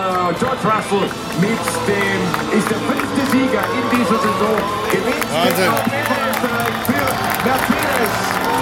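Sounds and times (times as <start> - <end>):
large crowd cheering at a race finish: 0.0 - 8.5
speech: 0.3 - 8.5.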